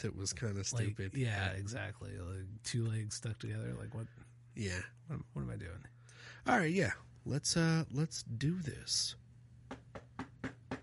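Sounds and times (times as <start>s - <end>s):
speech: 0.0s - 9.8s
faint low hum: 0.0s - 10.8s
knocks on a door: 9.7s - 10.8s.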